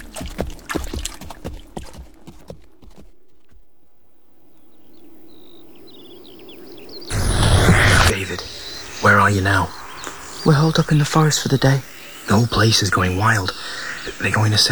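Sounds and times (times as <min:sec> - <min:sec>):
splashing steps of people moving through water: 0:00.0 - 0:02.5
loud rush of noise: 0:07.1 - 0:09.1
speech: 0:09.3 - 0:09.8, 0:10.4 - 0:14.7.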